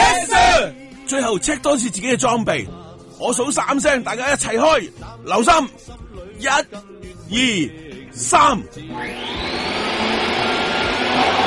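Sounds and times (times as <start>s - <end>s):
speech: 1.1s - 9.6s
vacuum cleaners running to clear sand and rubbish from cracks: 8.9s - 11.4s.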